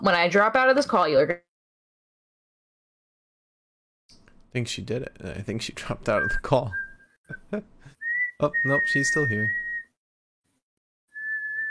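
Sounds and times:
speech: 0.0 - 1.5, 4.5 - 9.6
person whistling a single sustained note: 6.2 - 10.0, 11.1 - 11.6.

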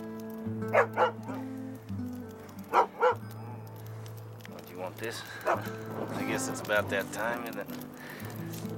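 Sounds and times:
speech: 0.7 - 1.2, 5.0 - 8.7
dog barking: 0.7 - 1.4, 2.7 - 3.7, 5.4 - 5.7.

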